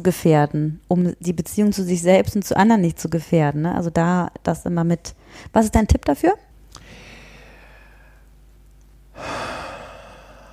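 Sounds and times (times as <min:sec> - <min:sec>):
speech: 0:00.0 - 0:06.5
deep breath drawn in: 0:06.8 - 0:08.3, 0:09.2 - 0:10.5.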